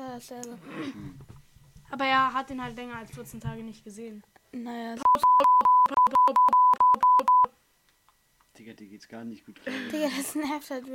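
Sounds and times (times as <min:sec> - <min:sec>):
speech: 0:00.2 - 0:01.3, 0:01.9 - 0:05.3, 0:08.7 - 0:10.9
steady 1 kHz censor bleep: 0:05.0 - 0:07.5.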